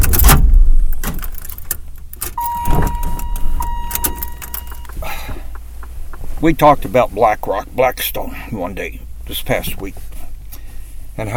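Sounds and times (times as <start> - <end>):
jangling keys: 0.0 - 5.8, 7.9 - 8.3
clunky car handling noises: 0.0 - 6.3, 7.4 - 8.3
low car engine rumble: 0.0 - 11.3
steady electronic chime tone of a car: 2.4 - 4.6
speech: 6.4 - 10.1, 11.2 - 11.3.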